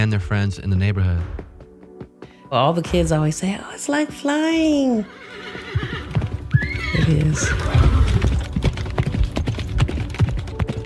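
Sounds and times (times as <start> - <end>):
speech: 0.0 - 1.5, 2.5 - 6.0, 6.9 - 8.1
hooves of a ridden horse clip-clopping: 5.3 - 10.8.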